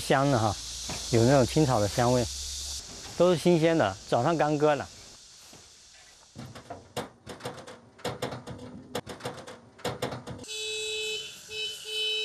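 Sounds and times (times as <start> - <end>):
speech: 0.0 - 2.4, 3.2 - 5.0
clattering knocks and thuds: 6.3 - 10.5
horn honking to call elk to feed: 10.4 - 12.2.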